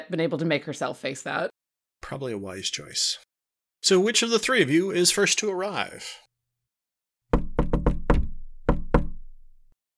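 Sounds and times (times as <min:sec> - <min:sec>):
speech: 0:00.0 - 0:01.5, 0:02.1 - 0:06.3
firm knocks on a wooden door: 0:07.3 - 0:09.6.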